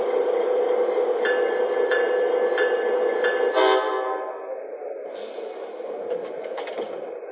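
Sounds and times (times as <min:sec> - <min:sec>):
passenger train rumbling past a station platform: 0:00.0 - 0:07.3
brief tonal squeal of a passenger train: 0:00.1 - 0:06.0
faint regular clacks of a passenger train: 0:00.8 - 0:04.2, 0:06.0 - 0:07.2.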